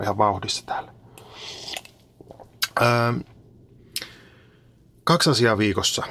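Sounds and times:
speech: 0.0s - 1.9s, 2.8s - 3.3s, 5.1s - 6.0s
slurping sips of hot coffee from a cup: 1.2s - 2.4s
swallowing: 1.2s - 2.8s.

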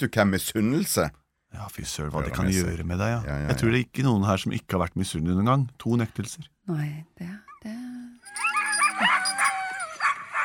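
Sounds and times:
speech: 0.0s - 7.8s
husky yipping and whining: 8.2s - 10.4s.

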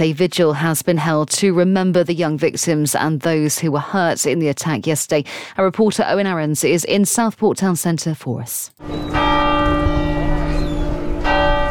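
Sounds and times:
speech: 0.0s - 9.8s
church bells ringing: 8.8s - 11.7s.

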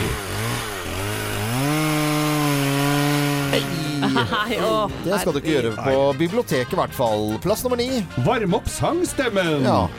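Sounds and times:
chainsaw engine running and revving: 0.0s - 5.4s
laughter: 3.5s - 6.4s
speech: 3.5s - 9.9s.

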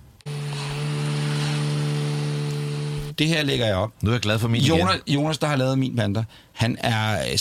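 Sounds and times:
paddleboards strapped to a car roof droning at speed: 0.0s - 3.2s
speech: 3.2s - 7.4s.

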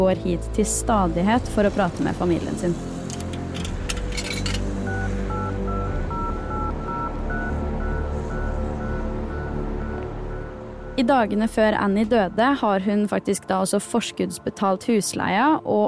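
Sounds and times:
speech: 0.0s - 3.0s, 11.0s - 15.8s
low rumbling background: 0.0s - 13.7s
sharp clicks and clatters: 3.1s - 4.7s
telephone keypad dialing tones: 4.9s - 10.1s.

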